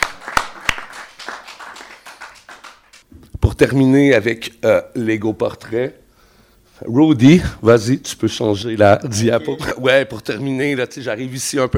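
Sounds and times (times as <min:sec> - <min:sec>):
audience applause for the organizers at an event: 0:00.0 - 0:03.0
speech: 0:03.6 - 0:06.0, 0:06.8 - 0:11.7.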